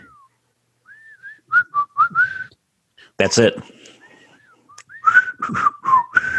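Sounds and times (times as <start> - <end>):
person whistling an old TV show opening theme: 0.0 - 2.6, 4.4 - 6.3
speech: 3.2 - 3.7.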